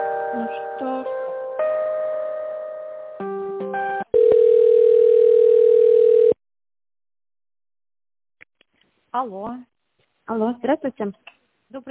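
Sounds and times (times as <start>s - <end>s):
speech: 0.3s - 1.3s, 9.2s - 9.7s, 10.3s - 11.8s
telephone tones while a call is transferred: 4.1s - 6.4s.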